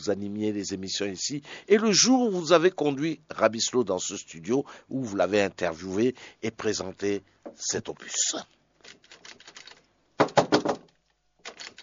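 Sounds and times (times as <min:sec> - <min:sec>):
speech: 0:00.0 - 0:08.6
knocking on a door: 0:10.2 - 0:10.8.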